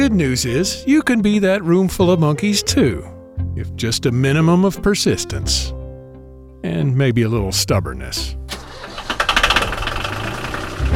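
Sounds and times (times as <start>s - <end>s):
speech: 0.0s - 5.8s, 6.6s - 8.5s
boat engine running: 8.7s - 10.9s.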